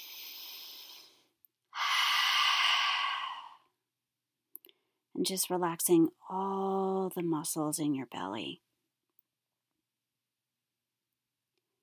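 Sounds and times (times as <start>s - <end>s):
long airy deep belly breaths: 0.0s - 3.8s
speech: 5.2s - 8.7s.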